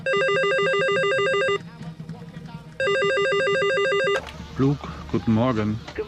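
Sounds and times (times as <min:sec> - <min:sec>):
telephone ringing with warbling electronic trills: 0:00.0 - 0:01.7, 0:02.8 - 0:04.3
speech: 0:04.6 - 0:06.0.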